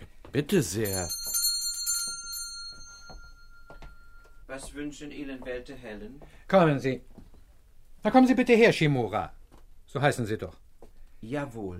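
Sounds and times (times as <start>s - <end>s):
speech: 0.4s - 1.2s, 4.5s - 7.2s, 8.0s - 10.6s, 11.2s - 11.7s
pull-cord bell ringing: 0.8s - 4.4s.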